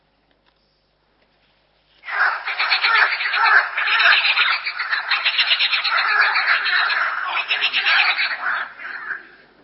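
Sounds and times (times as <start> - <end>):
dense chorus of frogs croaking: 2.0 - 9.6.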